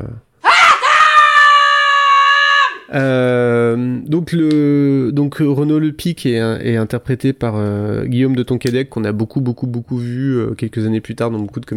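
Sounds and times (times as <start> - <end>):
woman screaming at children to come eat: 0.4 - 2.9
speech: 2.9 - 11.7.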